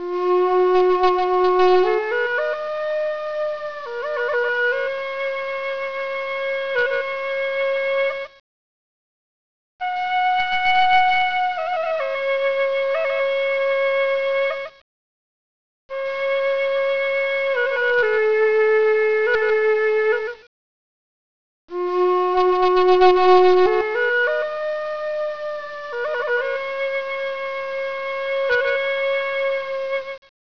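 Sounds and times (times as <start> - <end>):
Native flute: 0.0 - 8.4, 9.8 - 14.8, 15.9 - 20.5, 21.7 - 30.3.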